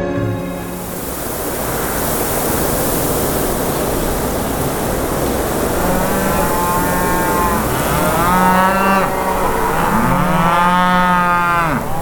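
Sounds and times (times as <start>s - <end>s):
steady broadband noise: 0.2s - 12.0s
cows mooing in long calls: 5.6s - 12.0s.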